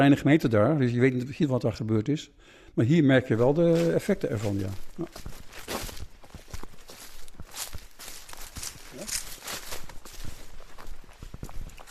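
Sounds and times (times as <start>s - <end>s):
speech: 0.0s - 5.8s
footsteps crunching along an outdoor path through meadow and oak woods: 3.4s - 11.8s.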